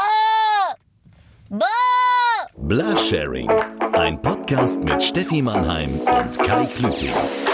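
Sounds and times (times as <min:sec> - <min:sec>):
person imitating a sheep bleating: 0:00.0 - 0:00.8, 0:01.5 - 0:03.0
speech: 0:01.5 - 0:01.8, 0:02.7 - 0:07.4.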